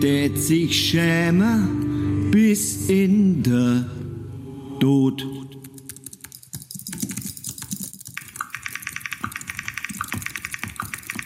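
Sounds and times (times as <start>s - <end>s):
speech: 0.0s - 4.0s, 4.8s - 5.5s
typing on a computer keyboard: 5.6s - 11.2s.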